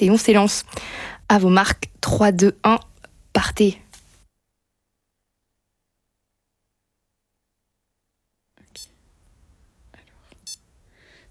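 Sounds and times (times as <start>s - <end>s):
speech: 0.0s - 3.8s
stopwatch beep from a digital watch connected to an app: 10.4s - 10.6s.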